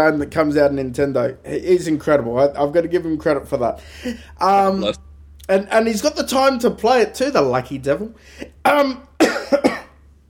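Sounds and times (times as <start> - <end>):
speech: 0.0 - 9.8
harsh coughs: 9.2 - 10.0.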